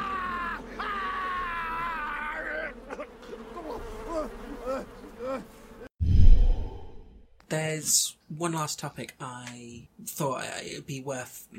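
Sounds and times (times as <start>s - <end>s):
bees buzzing: 0.0s - 5.9s
speech: 7.8s - 11.5s.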